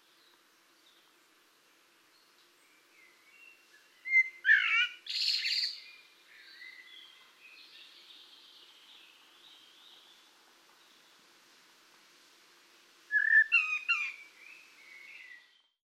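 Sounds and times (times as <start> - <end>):
common blackbird singing: 0.0 - 11.2, 13.1 - 15.8.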